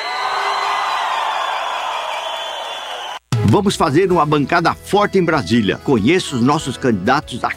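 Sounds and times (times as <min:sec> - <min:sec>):
crowd shouting and cheering: 0:00.0 - 0:03.2
speech: 0:03.5 - 0:07.5.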